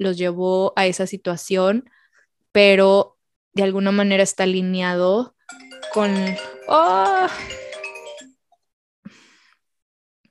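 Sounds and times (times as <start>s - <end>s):
speech: 0.0s - 7.6s
phone ringtone for incoming call: 5.5s - 8.6s.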